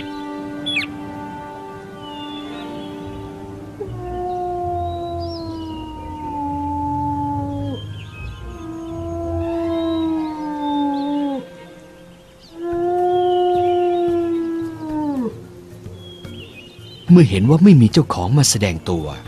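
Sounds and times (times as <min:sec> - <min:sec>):
jackal howling: 0:02.6 - 0:15.7
speech: 0:17.2 - 0:19.2.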